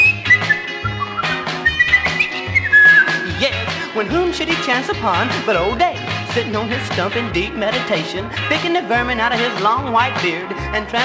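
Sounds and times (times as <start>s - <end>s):
person whistling a short cheerful tune: 0.0s - 3.6s
steady musical backing: 0.0s - 11.0s
speech: 4.0s - 11.0s.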